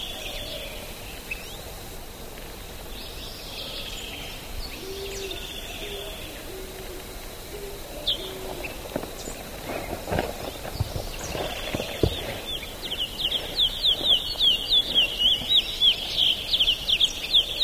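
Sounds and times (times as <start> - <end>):
Ultramarine Grosbeak Cyanocompsa brissoni singing: 8.1 - 17.5.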